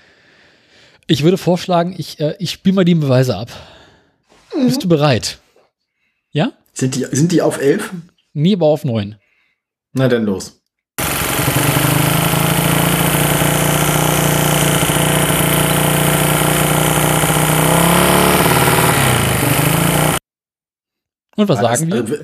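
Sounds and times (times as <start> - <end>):
speech: 1.1 - 3.7, 4.6 - 5.4, 6.3 - 9.2, 10.0 - 10.6, 21.4 - 22.2
engine idling at slightly high revs: 11.0 - 20.2.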